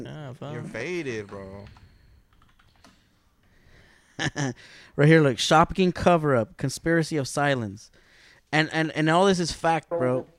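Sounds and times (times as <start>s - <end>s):
speech: 0.0s - 1.8s, 4.2s - 10.3s
steady hiss: 0.0s - 10.3s
typing on a computer keyboard to enter a search: 1.6s - 3.0s.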